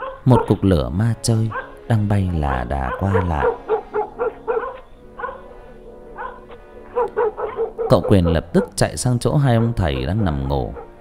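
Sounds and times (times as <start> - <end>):
dogs barking outside a house: 0.0 - 10.9
speech: 0.2 - 3.7, 7.9 - 10.8.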